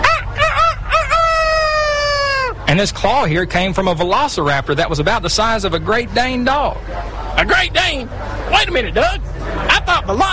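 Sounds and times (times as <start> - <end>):
rooster crowing: 0.0 - 2.6
speech: 2.7 - 10.3.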